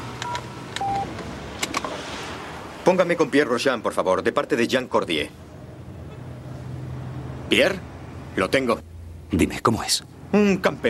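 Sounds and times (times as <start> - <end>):
telephone keypad beeps in a car: 0.2 - 1.1
speech: 2.9 - 5.4, 7.5 - 10.8.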